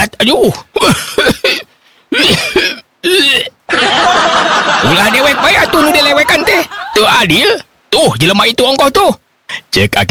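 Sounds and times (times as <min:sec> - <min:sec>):
speech: 0:00.2 - 0:01.6, 0:07.0 - 0:10.1
old man coughing and retching: 0:00.7 - 0:03.7
laughter: 0:03.7 - 0:07.2.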